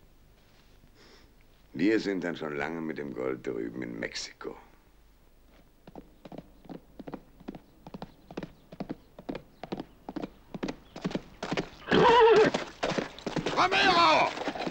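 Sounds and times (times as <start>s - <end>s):
speech: 1.8s - 4.7s
horse hooves clip-clopping at a trot: 5.5s - 14.7s
loud horse neigh: 11.8s - 14.7s.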